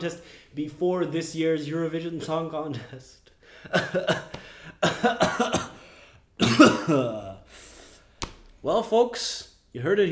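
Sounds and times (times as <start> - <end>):
speech: 0.0 - 5.6, 6.4 - 7.2, 8.6 - 10.1
man coughing and clearing throat: 3.6 - 7.5.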